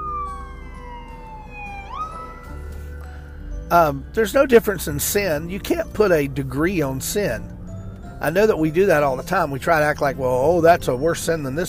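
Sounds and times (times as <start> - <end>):
police car siren passing by: 0.0 - 3.1
low rumble of traffic: 0.0 - 11.6
speech: 3.7 - 7.6, 8.2 - 11.6.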